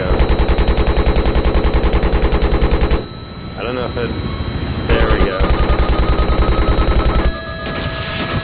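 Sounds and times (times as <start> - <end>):
rapid automatic gunfire from a weapon in a video game: 0.1 - 3.1, 5.2 - 8.4
speech: 3.8 - 4.4.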